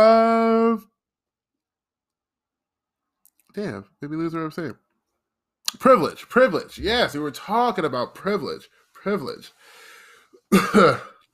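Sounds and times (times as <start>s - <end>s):
speech: 3.6s - 4.8s, 5.7s - 9.8s, 10.5s - 11.1s
person coughing: 10.5s - 11.2s.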